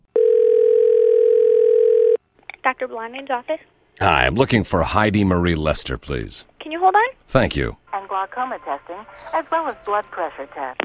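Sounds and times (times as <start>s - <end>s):
electronic ring tone of an outgoing phone call: 0.1s - 2.2s
speech: 2.7s - 10.8s.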